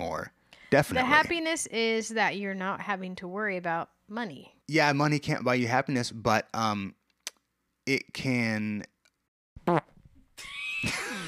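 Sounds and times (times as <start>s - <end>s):
speech: 0.7s - 7.0s, 7.9s - 8.9s, 9.6s - 9.9s
loud buzzy fart and sputtering hissy blast: 9.6s - 10.0s.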